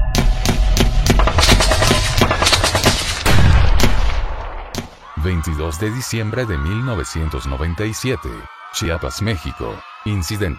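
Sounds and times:
bullets striking a temple in Chiapas Mexico: 0.1s - 4.9s
rapid gunfire during a massacre in Chiapas Mexico: 0.2s - 4.7s
speech: 5.3s - 10.5s.

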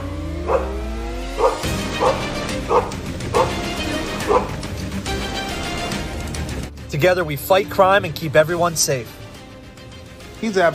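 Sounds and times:
constant rumbling background: 0.0s - 10.7s
police canine barking and yipping: 0.4s - 4.7s
speech: 7.0s - 9.2s, 10.4s - 10.7s.

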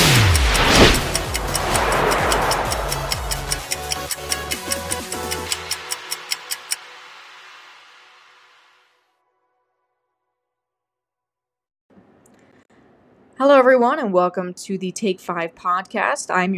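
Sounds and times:
car engine revving: 0.0s - 4.2s
clock ticking: 0.0s - 6.9s
speech: 13.4s - 16.5s.

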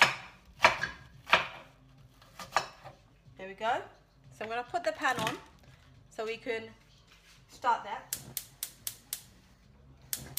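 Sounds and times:
knife chopping a medium onion: 0.0s - 2.9s
speech: 3.4s - 5.5s, 6.2s - 6.8s, 7.5s - 8.3s.

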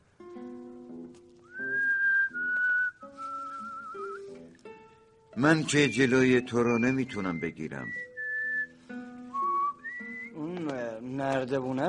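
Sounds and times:
quiet music: 0.0s - 11.8s
person whistling a melody: 1.5s - 4.4s, 5.6s - 10.6s
speech: 5.4s - 8.0s, 11.4s - 11.8s.

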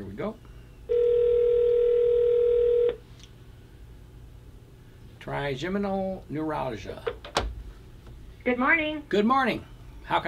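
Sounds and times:
speech: 0.0s - 0.5s, 5.2s - 7.4s, 8.4s - 10.2s
telephone dial tone while dialing a call: 0.9s - 3.0s.

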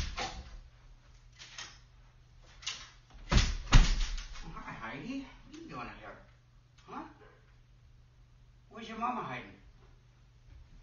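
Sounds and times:
faint low hum: 0.0s - 10.8s
unlocked front door thudding as it swings open: 3.2s - 4.4s
speech: 8.8s - 9.6s.

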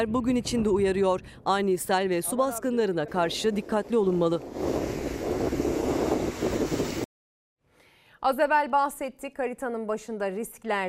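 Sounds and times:
storm wind in Muğla Turkey buffeting the microphone: 0.0s - 2.2s, 3.0s - 7.1s
speech: 0.0s - 5.0s, 8.2s - 10.8s
waves crashing: 3.0s - 7.1s.

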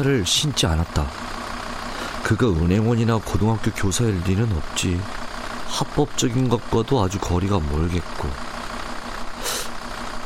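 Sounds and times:
speech: 0.0s - 1.4s, 2.2s - 8.5s
truck engine rumbling as the truck sets off: 0.0s - 10.2s.

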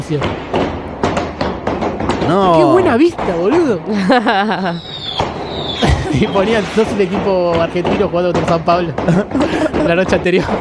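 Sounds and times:
firework bursts booming in Angosta street: 0.0s - 10.6s
speech: 0.1s - 0.6s, 2.3s - 4.9s, 5.8s - 10.6s
laughter: 3.6s - 7.2s, 8.7s - 10.6s
thin high firework whistle: 4.7s - 7.0s.

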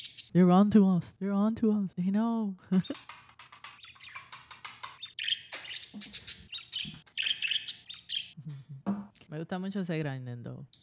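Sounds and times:
speech: 0.0s - 3.2s, 9.4s - 10.8s
birds chirping: 2.7s - 9.0s.

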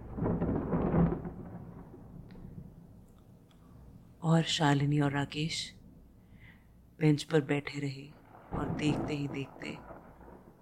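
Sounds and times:
thunder rumbling during a rainy lightning storm at a railway station: 0.0s - 3.0s, 8.2s - 10.6s
speech: 4.2s - 5.8s, 7.0s - 9.9s.

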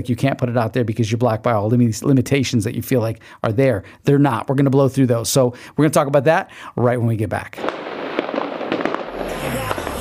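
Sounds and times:
speech: 0.0s - 7.9s
fireworks crackling and popping in a residential neighborhood: 7.6s - 10.0s.

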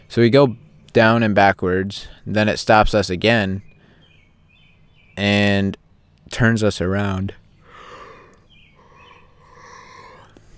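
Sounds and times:
speech: 0.1s - 3.7s, 5.2s - 7.4s
long breathy human yawn: 7.7s - 10.4s.

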